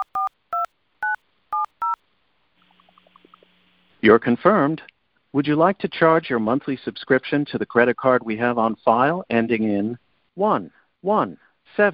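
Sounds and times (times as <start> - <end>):
telephone keypad tones entering a code on an automated refill phone line: 0.0 - 2.0
speech: 4.0 - 11.9.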